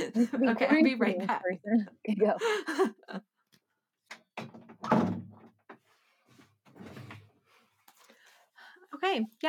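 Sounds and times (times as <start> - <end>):
speech: 0.0 - 3.3, 9.0 - 9.4
apartment door opening and closing: 4.1 - 5.7.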